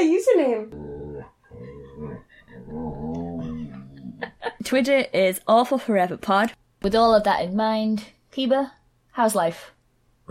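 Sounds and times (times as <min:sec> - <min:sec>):
dog growling and whimpering: 0:00.7 - 0:04.4
speech: 0:04.7 - 0:10.2.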